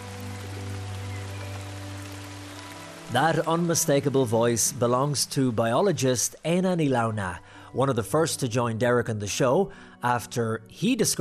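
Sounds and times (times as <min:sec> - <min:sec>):
dense rain falling through evergreen forest canopy: 0:00.0 - 0:07.4
speech: 0:03.1 - 0:11.2.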